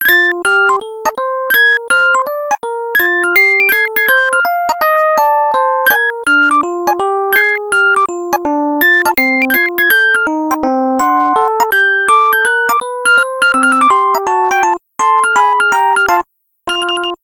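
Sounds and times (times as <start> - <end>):
jazzy LG G2x P999DW ringtone: 0.0 - 17.2.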